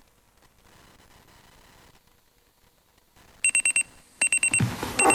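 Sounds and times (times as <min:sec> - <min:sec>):
alarm clock loud steady electronic tone: 0:03.4 - 0:05.1.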